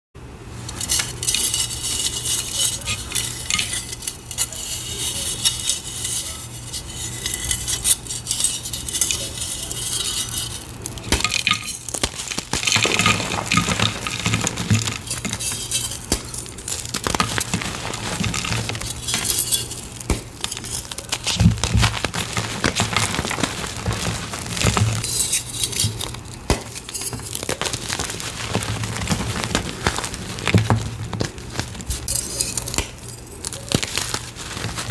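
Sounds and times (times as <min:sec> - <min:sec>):
gym chalk being carved, scraping and crumbling: 0:00.6 - 0:34.8.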